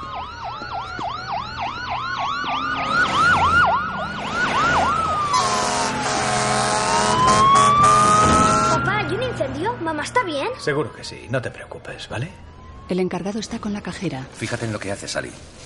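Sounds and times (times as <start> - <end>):
emergency sirens of police cars and a fire truck speeding past: 0.0 - 13.9
traffic rumble: 0.0 - 15.6
blaring horn-like tones: 5.2 - 9.6
speech: 10.0 - 15.6.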